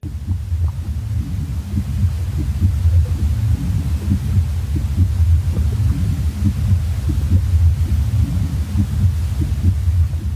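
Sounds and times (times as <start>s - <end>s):
constant low whooshing rumble in the womb: 0.0s - 10.3s
faint hiss: 0.0s - 10.3s
heartbeat as heard inside the womb: 0.0s - 10.3s.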